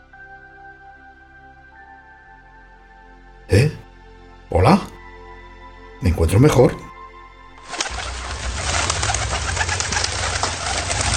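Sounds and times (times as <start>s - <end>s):
speech: 3.5s - 3.8s, 6.1s - 6.9s
pigeon cooing: 7.6s - 11.1s.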